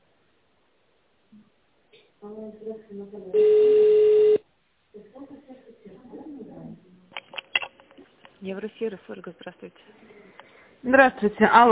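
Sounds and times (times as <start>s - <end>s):
speech: 2.2s - 4.2s, 8.4s - 10.2s, 10.8s - 11.6s
telephone voicemail signal beep: 3.4s - 4.4s.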